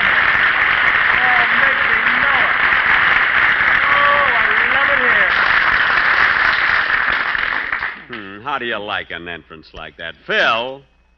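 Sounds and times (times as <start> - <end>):
studio audience applauding: 0.0 - 8.6
faint voices and whoops: 3.8 - 4.6
speech: 8.6 - 10.9.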